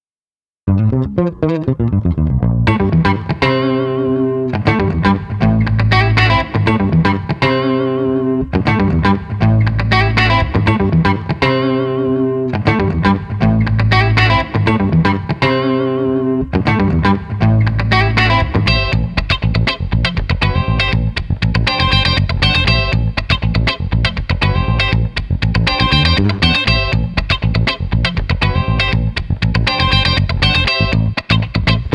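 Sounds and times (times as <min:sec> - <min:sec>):
funky street guitars chase music: 0:00.7 - 0:31.9.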